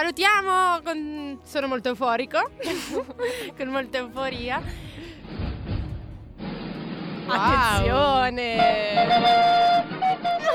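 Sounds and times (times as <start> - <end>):
speech: 0.0 - 5.4, 7.3 - 10.4
busy backing track: 0.0 - 10.5
laughter: 2.6 - 3.6, 10.3 - 10.5
thin cheap-sounding flute playing a closing song tune: 8.8 - 10.5.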